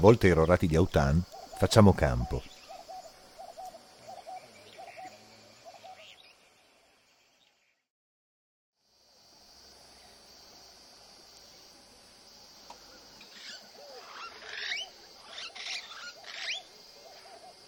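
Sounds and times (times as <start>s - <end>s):
speech: 0.0s - 2.6s
chorus of chirring insects at night on a river bank: 0.0s - 7.7s, 8.8s - 17.6s
bird hooting at night in a clearing on a river bank: 1.2s - 6.2s, 12.8s - 17.6s.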